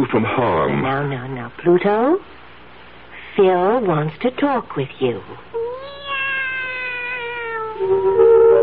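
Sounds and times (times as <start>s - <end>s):
speech: 0.0s - 2.3s, 3.4s - 6.0s, 7.8s - 8.5s
long drawn-out cat meow: 5.6s - 7.9s.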